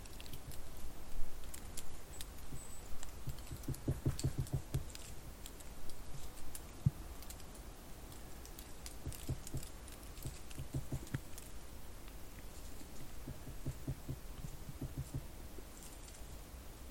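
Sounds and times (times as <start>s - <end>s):
woodpecker pecking on a beech trunk heard from the trunk: 0.0s - 16.2s
faint constant hiss: 0.0s - 16.8s
dull low thuds: 2.5s - 4.9s, 9.0s - 11.2s, 13.0s - 15.4s.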